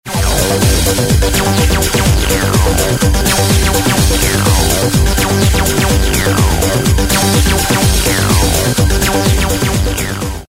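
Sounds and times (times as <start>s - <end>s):
Roland TB303 synthesizer: 0.0s - 10.4s.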